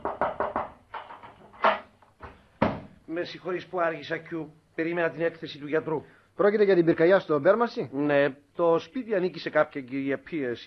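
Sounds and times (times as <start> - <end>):
knocking on a door: 0.0 - 0.8, 2.6 - 2.9
speech: 3.1 - 10.6.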